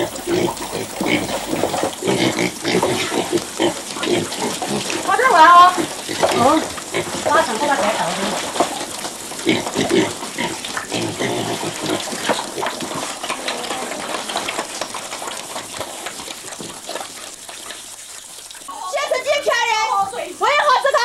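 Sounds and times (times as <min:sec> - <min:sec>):
piglets snuffling and shuffling: 0:00.0 - 0:01.9
piglets raised for sale grunting and squealing: 0:00.0 - 0:05.1, 0:09.4 - 0:14.6
watery splashing: 0:00.0 - 0:20.8.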